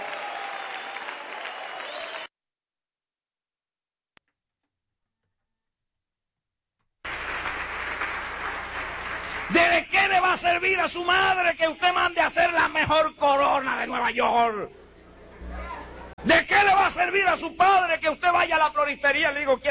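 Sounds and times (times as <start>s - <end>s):
loud dense applause from a large group: 0.0s - 2.3s, 7.1s - 9.7s
speech: 9.5s - 14.8s, 16.2s - 19.6s.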